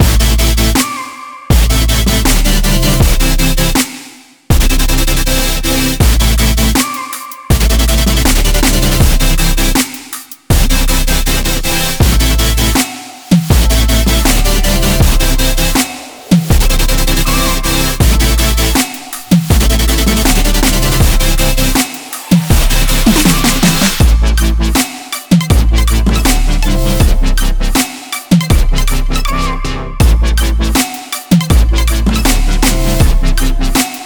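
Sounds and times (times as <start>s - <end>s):
uplifting future bass music: 0.0s - 34.0s.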